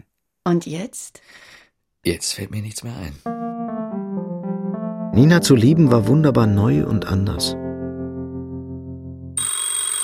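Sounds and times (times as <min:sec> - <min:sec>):
speech: 0:00.4 - 0:03.8, 0:05.2 - 0:07.6
telephone ringing: 0:09.4 - 0:10.0.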